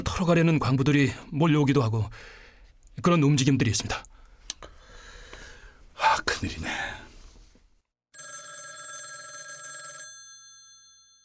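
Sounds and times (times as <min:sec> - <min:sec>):
speech: 0:00.1 - 0:02.4, 0:03.0 - 0:04.2, 0:06.4 - 0:06.8
telephone bell ringing: 0:08.1 - 0:11.2.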